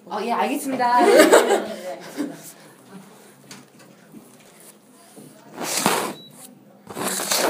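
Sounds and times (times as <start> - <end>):
air conditioner airflow after being switched on: 0.0 - 7.4
speech: 0.1 - 2.4
quiet murmuring: 0.4 - 7.4
laughter: 1.0 - 2.6
short electronic beep of an air conditioner: 6.1 - 6.5.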